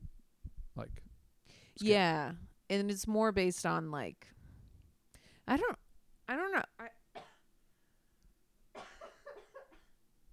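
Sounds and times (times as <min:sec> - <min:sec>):
speech: 0:00.8 - 0:04.4, 0:05.5 - 0:07.0
rough coughs: 0:07.2 - 0:07.5, 0:08.8 - 0:10.0.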